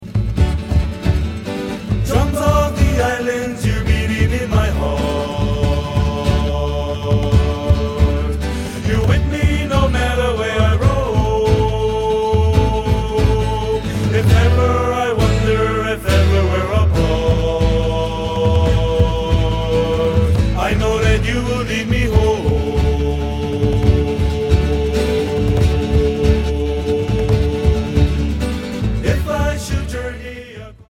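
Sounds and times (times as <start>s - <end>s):
drums: 0.0s - 30.6s.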